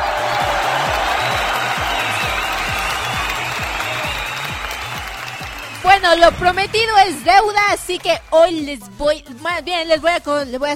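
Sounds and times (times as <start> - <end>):
crowd applauding loudly: 0.0 - 8.9
steady rhythmic low thump: 5.8 - 8.2
speech: 6.0 - 10.7.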